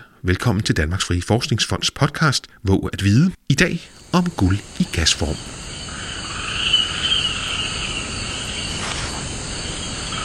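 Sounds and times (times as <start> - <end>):
speech: 0.2 - 5.6
chorus of crickets and other insects in Papua New Guinea jungle: 3.8 - 10.2.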